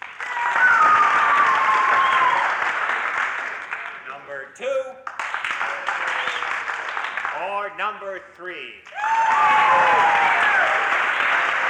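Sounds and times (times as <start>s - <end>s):
crowd applauding: 0.0s - 4.2s, 5.0s - 7.7s, 8.9s - 11.6s
faint whistle or cheer: 0.2s - 2.5s, 9.0s - 10.7s
speech: 7.9s - 11.2s.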